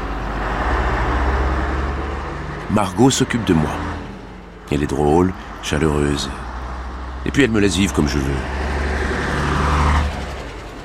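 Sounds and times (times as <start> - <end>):
double-decker bus engine rumbling through a city street: 0.0 - 10.8
road noise: 0.0 - 10.8
speech: 2.7 - 3.9, 4.7 - 6.4, 7.2 - 8.6.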